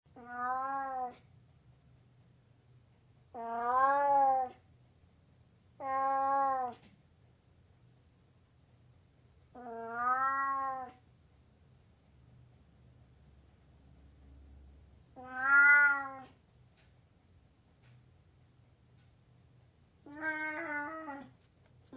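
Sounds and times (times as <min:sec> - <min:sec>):
Burmese cat meowing: 0:00.1 - 0:01.2, 0:03.3 - 0:04.6, 0:05.8 - 0:06.8, 0:09.6 - 0:11.0, 0:15.2 - 0:16.4, 0:20.0 - 0:21.4.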